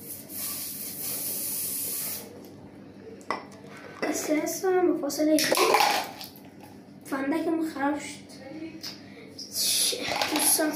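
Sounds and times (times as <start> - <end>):
hair spray hissing from an aerosol can: 0.0 - 2.3
speech: 4.2 - 6.1, 7.6 - 9.0, 10.0 - 10.7.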